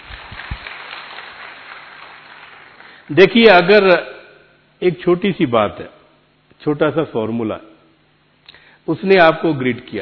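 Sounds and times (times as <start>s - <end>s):
room full of people clapping: 0.0s - 3.1s
speech: 3.1s - 4.1s, 4.8s - 6.0s, 6.6s - 7.7s, 8.8s - 10.0s.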